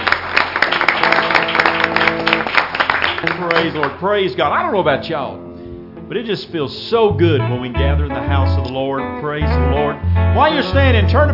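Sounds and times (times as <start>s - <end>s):
church congregation clapping in praise: 0.0s - 4.2s
speech: 3.2s - 5.5s, 6.1s - 11.3s.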